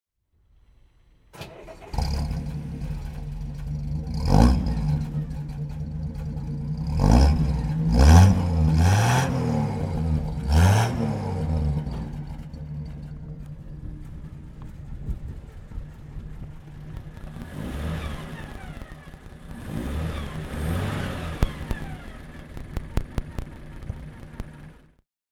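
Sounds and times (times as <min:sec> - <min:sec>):
1937 Graham Supercharger car: 0:00.5 - 0:25.0.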